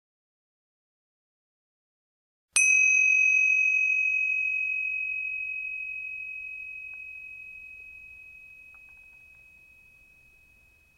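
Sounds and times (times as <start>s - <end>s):
meditation bell struck once: 2.6s - 10.9s.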